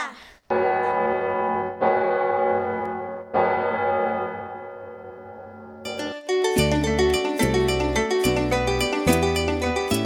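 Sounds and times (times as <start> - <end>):
church bell ringing: 0.5 - 6.8
upbeat rhythmic music with a steady beat: 5.9 - 10.0.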